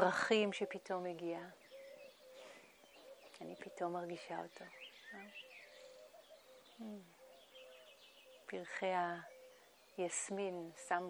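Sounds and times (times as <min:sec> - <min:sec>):
speech: 0:00.0 - 0:01.6, 0:03.4 - 0:05.5, 0:06.8 - 0:07.2, 0:08.5 - 0:09.3, 0:10.0 - 0:11.0
doves cooing: 0:00.1 - 0:11.0
thin high chirps from other birds: 0:01.6 - 0:03.9, 0:04.5 - 0:10.0.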